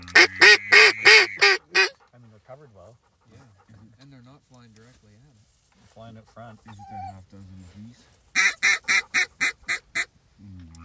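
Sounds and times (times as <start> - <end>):
ducks quacking: 0.0 - 3.9, 6.2 - 7.2, 8.4 - 10.1
speech: 6.1 - 8.2.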